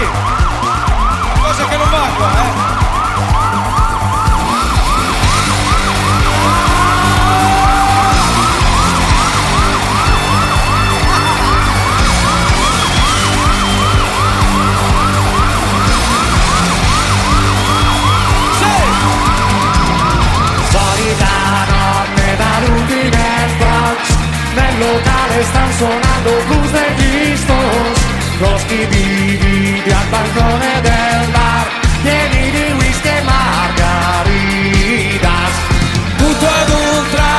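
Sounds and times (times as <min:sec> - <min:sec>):
police sirens wailing: 0:00.0 - 0:37.3.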